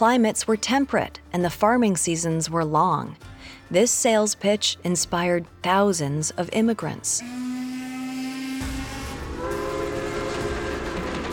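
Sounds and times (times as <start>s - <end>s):
speech: 0.0s - 7.5s
steam train whistle: 7.2s - 11.3s
steam train wheels rumbling and clattering on tracks: 9.4s - 11.3s.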